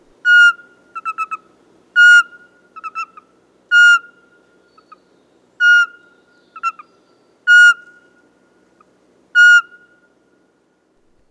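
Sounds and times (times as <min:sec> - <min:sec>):
male Eurasian pygmy owl whistles and trills: 0:00.2 - 0:01.4, 0:02.0 - 0:05.0, 0:05.6 - 0:08.2, 0:09.4 - 0:10.0.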